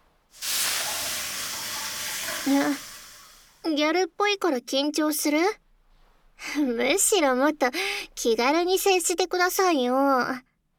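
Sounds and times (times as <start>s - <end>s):
aroma water splashing onto hot sauna stones: 0.4s - 3.6s
steam hissing from hot sauna stones in a private sauna room: 0.4s - 3.6s
speech: 2.4s - 2.9s, 3.6s - 5.6s, 6.4s - 10.7s.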